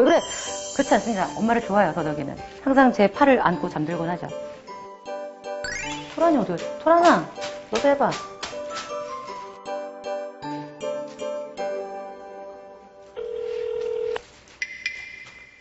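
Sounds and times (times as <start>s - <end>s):
speech: 0.0s - 4.5s, 6.2s - 8.3s
telephone ringing with electronic tones for an incoming call: 13.2s - 14.2s.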